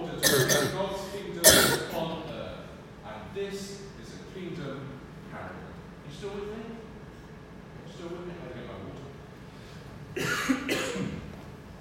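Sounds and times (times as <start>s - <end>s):
audience member coughing: 0.2s - 2.0s, 10.2s - 11.2s
speech: 3.4s - 6.8s, 7.9s - 9.1s.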